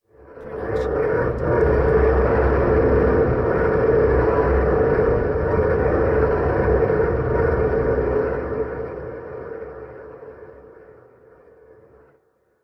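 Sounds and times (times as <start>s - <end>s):
horror low rumbles: 0.4s - 10.2s.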